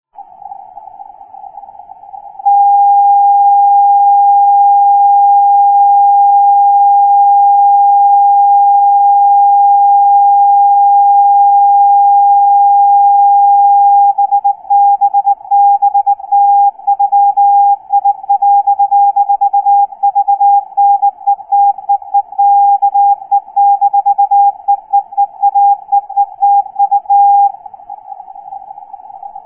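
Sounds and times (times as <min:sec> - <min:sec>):
CW morse code beacon: 0:02.5 - 0:27.6.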